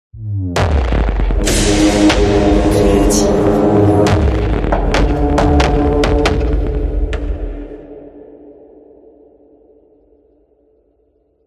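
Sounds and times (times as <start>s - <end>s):
percussion effects: 0.5s - 7.9s.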